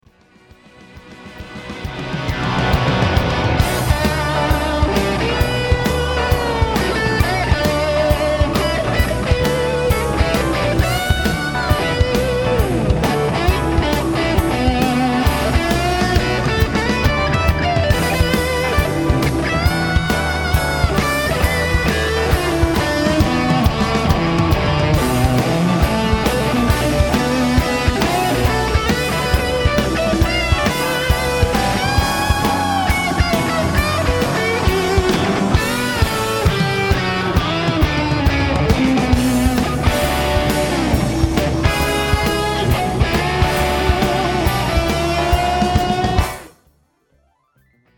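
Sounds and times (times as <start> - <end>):
guitar solo through fuzz pedal: 2.1 - 46.6.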